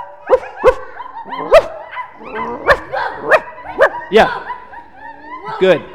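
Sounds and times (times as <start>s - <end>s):
laughter: 0.0s - 5.9s
people imitating a dog's barking with woof-like yelps: 0.0s - 5.9s
speech: 4.1s - 4.4s, 5.6s - 5.9s.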